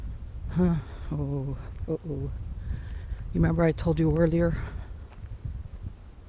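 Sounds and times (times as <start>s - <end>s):
faint wind: 0.0s - 6.2s
speech: 0.6s - 4.8s
soft footsteps on sand: 1.6s - 6.2s.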